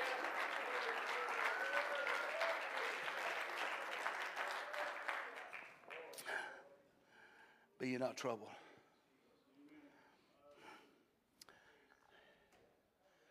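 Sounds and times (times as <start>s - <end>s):
large audience applause: 0.0s - 6.2s
speech: 7.8s - 8.6s.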